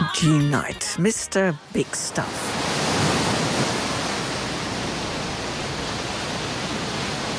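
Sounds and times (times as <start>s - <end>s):
speech: 0.2s - 2.7s
rushing water from an artificial wave surf pool in a city canal in Rotterdam: 1.6s - 7.3s.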